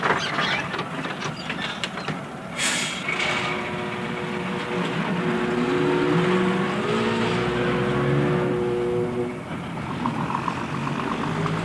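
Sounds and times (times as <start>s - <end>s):
mail train rumbling into a station: 0.0s - 11.6s
sharp hiss of mail train air brakes: 2.5s - 3.4s.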